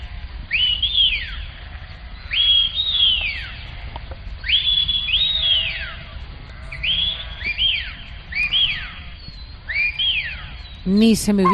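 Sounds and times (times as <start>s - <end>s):
low outdoor rumble: 0.0s - 11.5s
shepherd whistling calls to livestock: 2.3s - 3.6s, 4.4s - 6.1s, 6.7s - 10.8s
speech: 10.9s - 11.5s.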